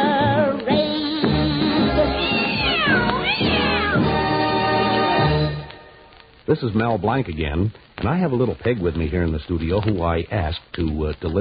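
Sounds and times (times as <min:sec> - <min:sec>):
busy musical backing: 0:00.0 - 0:06.3
cat-like meowing and caterwauling: 0:02.0 - 0:04.2
speech: 0:06.5 - 0:11.4.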